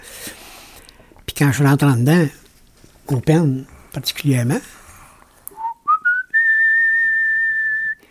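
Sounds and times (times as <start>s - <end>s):
speech: 1.4s - 2.4s, 3.1s - 4.8s
person whistling a short tune: 5.6s - 8.1s.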